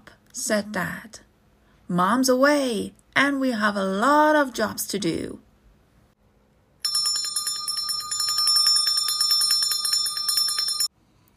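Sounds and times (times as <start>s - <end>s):
speech: 0.4s - 1.3s, 1.9s - 5.4s
hand bell ringing: 6.8s - 10.9s.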